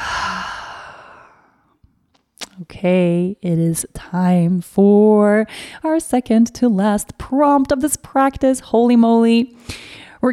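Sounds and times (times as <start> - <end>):
deep breath exhale during a guided reflective practice: 0.0 - 1.6
speech: 2.6 - 10.3.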